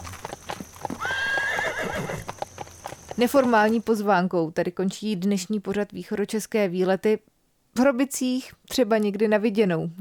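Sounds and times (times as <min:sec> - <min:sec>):
horse hooves clip-clopping as horses are prepared in Hrobice: 0:00.0 - 0:04.1
horse whinnying: 0:00.8 - 0:02.3
speech: 0:03.2 - 0:09.9.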